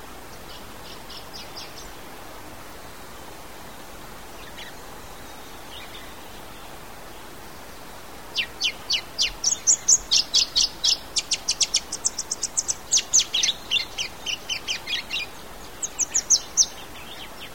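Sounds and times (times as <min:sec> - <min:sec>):
background hiss: 0:00.0 - 0:17.5
bright-rumped yellow finch giving high sharp chirps: 0:08.4 - 0:17.2.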